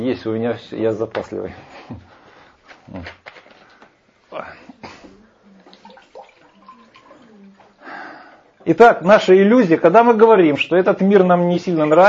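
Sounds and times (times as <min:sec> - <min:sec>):
speech: 0:00.0 - 0:02.2, 0:02.9 - 0:03.3, 0:08.6 - 0:12.0
person drinking water: 0:04.6 - 0:08.6
water pouring in splashy bursts: 0:05.6 - 0:07.8.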